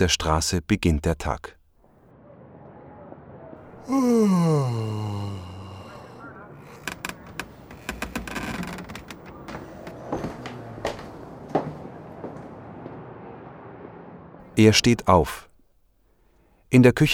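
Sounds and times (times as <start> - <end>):
speech: 0.0 - 1.6, 3.9 - 5.2, 14.6 - 15.5, 16.7 - 17.1
man yawning: 3.8 - 6.2.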